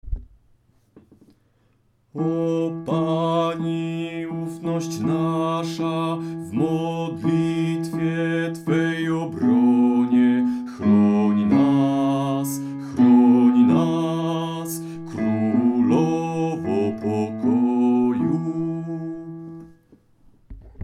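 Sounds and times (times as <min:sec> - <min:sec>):
bass voice singing a hymn: 0:02.2 - 0:19.7.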